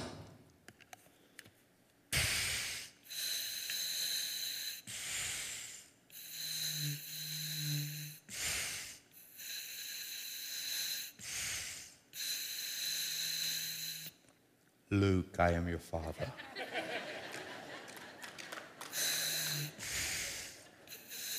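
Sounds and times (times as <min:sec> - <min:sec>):
loud heavy breathing through a diving regulator: 0:02.2 - 0:14.1, 0:18.9 - 0:21.3
speech: 0:15.0 - 0:16.6
laughter: 0:16.1 - 0:19.0, 0:20.4 - 0:20.9.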